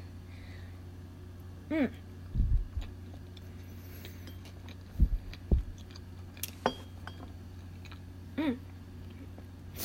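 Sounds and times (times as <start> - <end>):
speech: 1.7 - 2.1
natto and whitebait being chewed: 2.3 - 6.6, 7.4 - 9.6.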